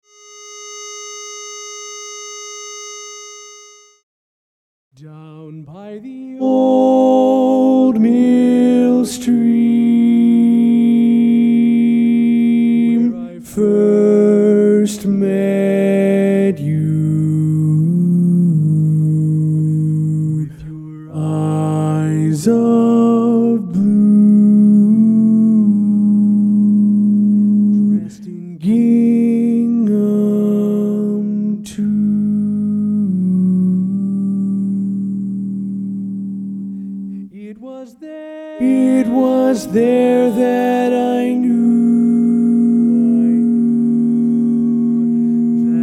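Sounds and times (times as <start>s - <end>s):
baritone voice singing: 5.0s - 45.8s.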